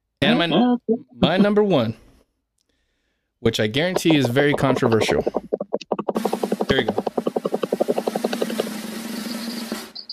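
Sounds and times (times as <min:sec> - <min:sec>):
speech: 0:00.4 - 0:02.0, 0:03.4 - 0:05.5, 0:06.2 - 0:07.1
helicopter rotor chopping overhead: 0:03.9 - 0:10.0.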